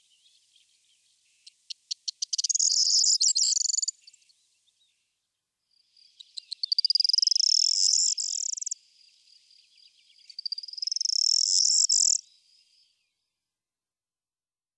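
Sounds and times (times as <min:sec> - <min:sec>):
corn bunting singing: 0:00.0 - 0:04.3, 0:06.0 - 0:12.8.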